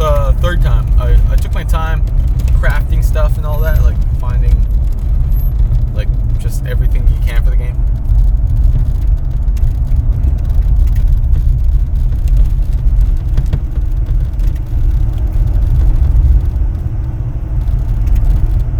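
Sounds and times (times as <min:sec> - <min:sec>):
car being driven with steady engine and road drone: 0:00.0 - 0:18.7.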